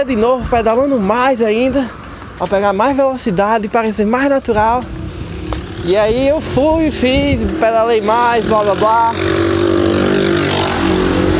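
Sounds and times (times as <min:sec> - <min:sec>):
speech: 0:00.0 - 0:05.0, 0:05.8 - 0:09.4
loud motorcycle engine roaring as it passes: 0:04.8 - 0:11.3.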